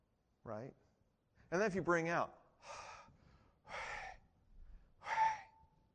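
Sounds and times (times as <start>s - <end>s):
speech: 0.4s - 0.9s, 1.5s - 2.9s
loud exaggerated airy breaths in and out: 2.6s - 5.8s.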